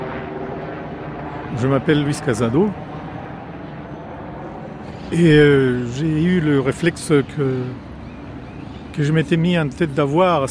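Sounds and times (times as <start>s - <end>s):
helicopter flying overhead: 0.0s - 10.4s
speech: 1.5s - 2.9s, 5.1s - 7.9s, 9.0s - 10.4s.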